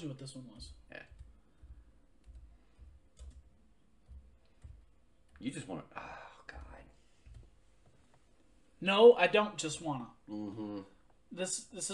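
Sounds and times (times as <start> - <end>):
speech: 0.0 - 1.1, 5.4 - 6.2, 8.8 - 11.9
computer keyboard typing: 0.5 - 5.5.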